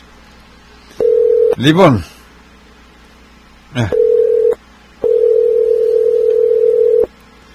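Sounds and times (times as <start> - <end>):
electronic telephone ringback tone on an unanswered line: 1.0 - 1.6, 3.9 - 7.1
speech: 1.6 - 2.1, 3.8 - 4.0.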